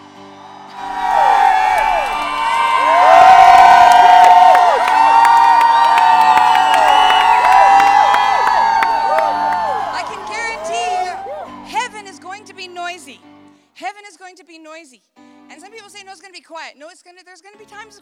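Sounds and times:
large crowd shouting and cheering: 0.0 - 12.0.

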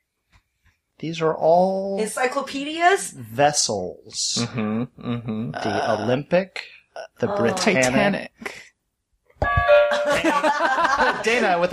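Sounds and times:
speech: 1.0 - 8.6, 10.2 - 11.7
quiz answer bell chime: 9.4 - 10.6
laughter: 10.0 - 11.7.

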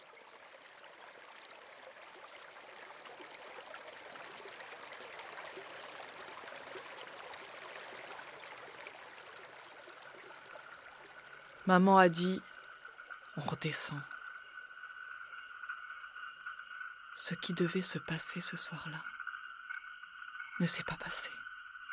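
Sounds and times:
water flowing: 0.0 - 19.0
speech: 11.7 - 12.5, 13.4 - 14.1, 17.3 - 19.2, 20.6 - 21.4.

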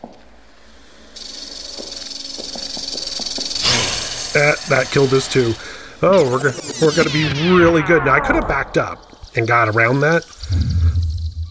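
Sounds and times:
snake hissing: 3.6 - 6.0
speech: 4.4 - 10.6.

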